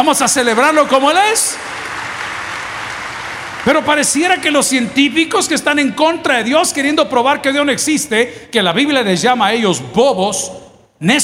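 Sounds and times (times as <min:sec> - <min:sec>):
speech: 0:00.0 - 0:02.0, 0:03.7 - 0:11.2
crowd applauding: 0:00.4 - 0:04.8.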